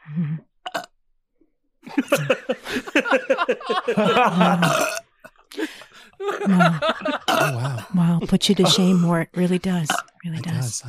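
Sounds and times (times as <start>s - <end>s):
speech: 0.1s - 0.5s, 2.0s - 3.2s, 3.9s - 5.0s, 6.4s - 10.8s
long loud drawn-out burp: 0.6s - 0.9s, 4.4s - 5.1s, 7.2s - 7.8s
short croaky belches: 0.6s - 0.9s, 4.6s - 5.1s, 7.2s - 7.8s, 9.8s - 10.2s
laughter: 1.8s - 4.9s, 5.6s - 9.1s.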